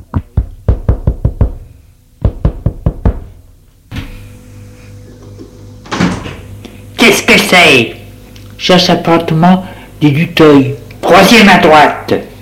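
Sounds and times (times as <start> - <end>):
hand knocking sharply on the door of a concierge's lodge: 0.1 - 1.6, 2.2 - 3.3
speech: 7.1 - 8.0, 8.6 - 12.3.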